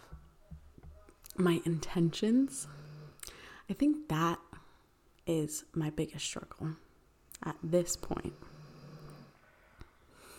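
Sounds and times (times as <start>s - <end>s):
speech: 1.4s - 2.8s, 3.7s - 4.5s, 5.3s - 6.8s, 7.4s - 8.5s
dog snoring: 2.3s - 3.2s, 8.0s - 9.4s.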